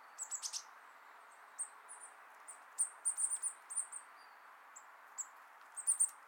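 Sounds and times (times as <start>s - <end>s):
Eurasian blue tit Cyanistes caeruleus calling: 0.1s - 0.7s, 1.6s - 4.1s, 4.8s - 6.2s.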